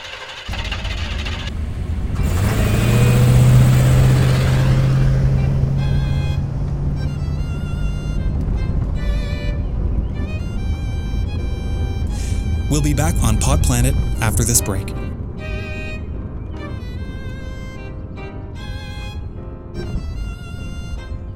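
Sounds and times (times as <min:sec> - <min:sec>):
truck engine starting up and revving: 0:00.0 - 0:09.6, 0:10.5 - 0:14.6
speech: 0:12.8 - 0:15.1.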